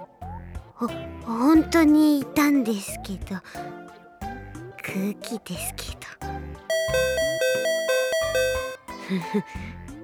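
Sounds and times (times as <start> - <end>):
speech: 0.8 - 3.8, 4.9 - 7.2, 9.1 - 9.8
doorbell two-tone ding-dong chime: 6.7 - 8.8.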